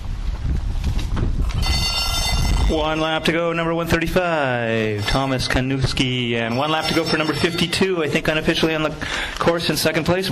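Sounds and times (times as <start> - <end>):
steady broadband outdoor noise at a bike race: 0.0 - 10.2
last-lap bell ringing at a bike race: 1.6 - 3.2, 5.0 - 5.6, 6.4 - 8.1
speech: 2.7 - 10.2.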